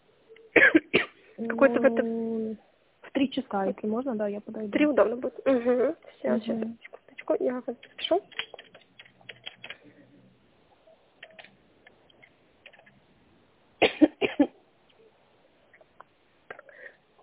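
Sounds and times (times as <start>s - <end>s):
woman coughing: 0.6s - 1.2s, 13.8s - 14.6s
speech: 1.4s - 8.4s
faint keyboard tapping: 6.6s - 9.9s, 11.2s - 13.0s.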